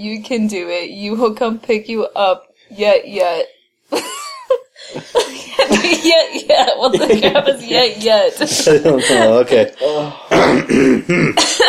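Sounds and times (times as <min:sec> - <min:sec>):
speech: 0:00.0 - 0:04.1, 0:04.8 - 0:11.6
laughter: 0:04.0 - 0:10.1
person clearing their throat: 0:10.2 - 0:11.6.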